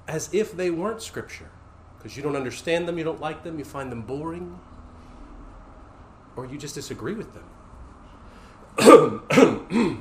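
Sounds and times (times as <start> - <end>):
speech: 0.1 - 4.7, 6.4 - 7.6, 8.8 - 10.0
throat clearing from a tickle in the throat: 8.8 - 10.0.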